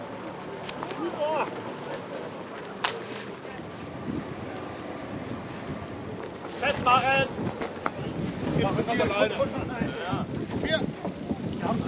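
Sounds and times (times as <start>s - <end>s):
outboard motors on a raft droning on the river: 0.0s - 11.8s
gusty wind buffeting the microphone: 3.6s - 11.8s
speech: 6.8s - 7.4s, 8.6s - 10.8s.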